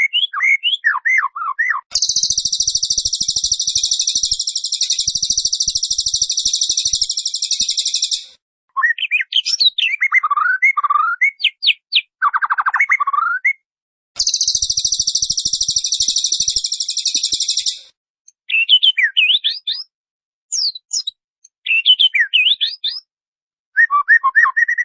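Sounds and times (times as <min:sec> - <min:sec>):
white-rumped shama song with whistled phrases: 0:00.0 - 0:19.9, 0:20.5 - 0:23.1, 0:23.7 - 0:24.8.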